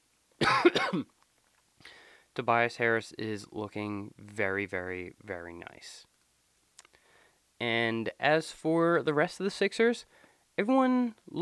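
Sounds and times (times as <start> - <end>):
person with a lingering cough coughing: 0.4 - 1.1
speech: 0.9 - 1.2, 2.4 - 6.1, 7.6 - 11.4.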